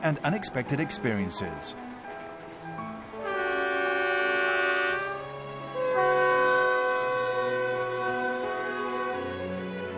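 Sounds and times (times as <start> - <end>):
speech: 0.0 - 1.9
train whistle on a forest railway in China's far north: 3.2 - 5.2, 5.8 - 9.3.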